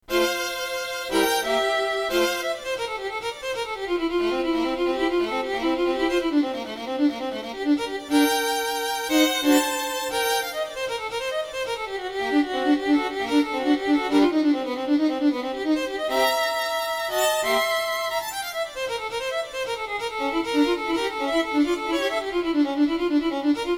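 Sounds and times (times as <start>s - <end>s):
solo violin sonata in classical style: 0.0s - 23.7s.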